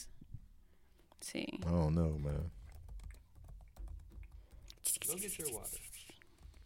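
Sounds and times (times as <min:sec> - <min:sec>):
speech: 0:01.2 - 0:02.6, 0:05.1 - 0:05.9
keyboard typing: 0:02.4 - 0:06.6.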